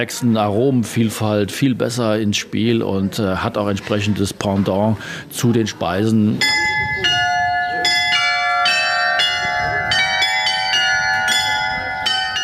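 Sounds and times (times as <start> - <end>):
speech: 0.0 - 7.2
carillon of a castle built in 1729 ringing a melody: 6.4 - 12.4.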